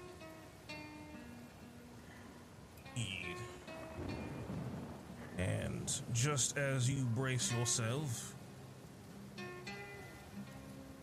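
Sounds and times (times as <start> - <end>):
steady rain in a thunderstorm: 0.0 - 11.0
speech: 3.0 - 4.2, 5.4 - 8.4
low rumbling thunder in a thunderstorm: 4.0 - 5.4.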